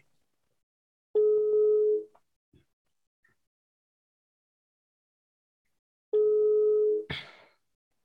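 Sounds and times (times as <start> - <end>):
phone ringback tone while dialing a call: 1.2 - 2.0, 6.2 - 7.0.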